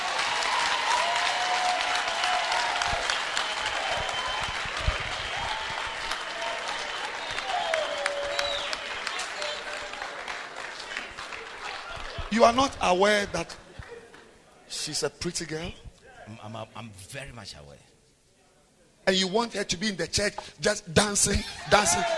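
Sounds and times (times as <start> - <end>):
cheers and whoops: 0.0 - 10.0, 21.5 - 22.1
large audience clapping: 0.0 - 14.4
speech: 12.4 - 13.6, 14.8 - 17.9, 19.1 - 22.1.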